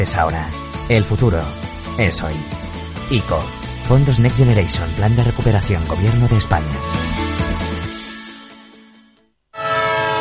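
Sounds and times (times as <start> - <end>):
speech: 0.0 - 7.3
loud train horn as a train departs: 9.5 - 10.1.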